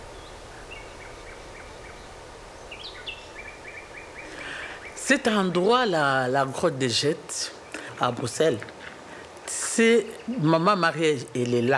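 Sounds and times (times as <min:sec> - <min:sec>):
steady low hum: 0:00.0 - 0:10.7
birds singing outdoors at a grotto in Brussels Belgium: 0:00.0 - 0:11.7
speech: 0:05.1 - 0:08.8, 0:09.8 - 0:11.7.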